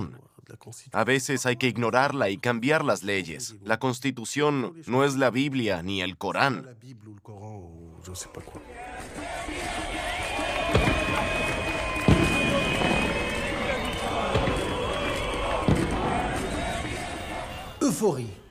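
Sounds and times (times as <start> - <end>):
speech: 0.0 - 10.0, 17.9 - 18.4
dense street crowd cheering and shouting: 8.6 - 18.1
car horns blaring in long sustained tones: 8.8 - 18.4
sharp bangs: 9.6 - 17.8.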